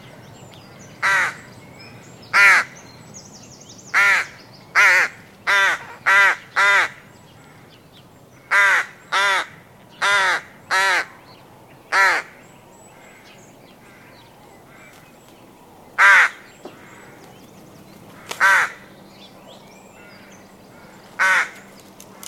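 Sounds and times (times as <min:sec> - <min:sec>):
adult rook giving harsh raspy caws: 0:01.0 - 0:01.5, 0:02.3 - 0:02.8, 0:03.9 - 0:11.2, 0:11.9 - 0:15.0, 0:16.0 - 0:17.4, 0:18.1 - 0:18.9, 0:19.9 - 0:22.2.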